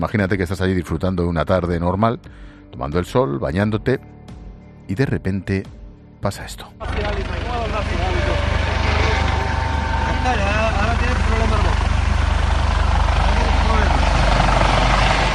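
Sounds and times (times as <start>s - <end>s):
speech: 0.0s - 4.2s, 4.9s - 7.3s
customs surveillance helicopter flying low over water: 6.8s - 15.3s
indistinct voices calling out faintly: 6.8s - 15.3s.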